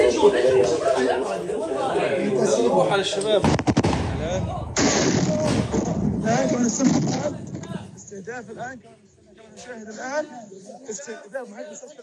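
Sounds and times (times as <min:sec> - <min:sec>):
agitated voices shouting and chattering: 0:00.0 - 0:12.0
explosive blast near a health center: 0:03.4 - 0:07.4.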